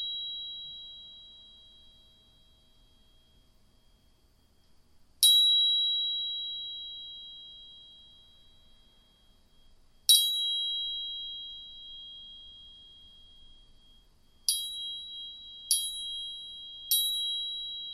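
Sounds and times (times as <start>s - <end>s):
two tuning forks ringing at two close pitches: 0.0s - 4.0s, 5.2s - 17.9s.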